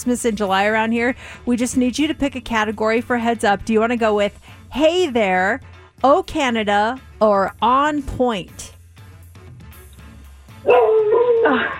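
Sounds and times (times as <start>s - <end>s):
speech: 0.0s - 8.7s, 11.5s - 11.7s
dog barking: 10.6s - 11.7s.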